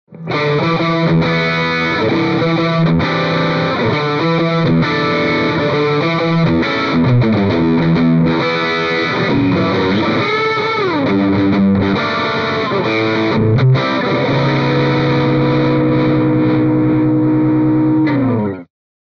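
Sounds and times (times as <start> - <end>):
distorted Stratocaster electric guitar through Celestion Vintage 30 speaker: 0.1 - 18.7.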